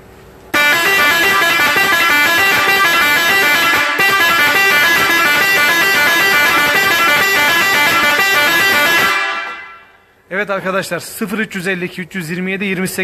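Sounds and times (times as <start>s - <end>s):
loud Seger musical air horn playing an Arabic tune: 0.6s - 10.0s
speech: 10.4s - 13.0s.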